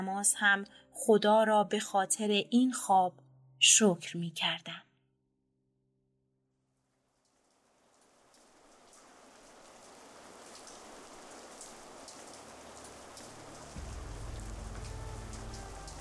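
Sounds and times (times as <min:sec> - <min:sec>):
speech: 0:00.2 - 0:04.9
steady rain spattering on surfaces: 0:06.9 - 0:15.9
low rumble: 0:13.8 - 0:15.9.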